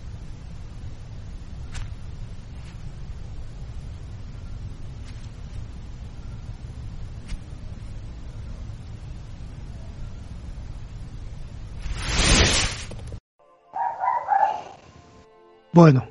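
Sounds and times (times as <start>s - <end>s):
low rumble: 0.0s - 13.2s
rushing whoosh: 11.8s - 13.0s
dog barking: 13.8s - 14.8s
speech: 15.8s - 16.0s.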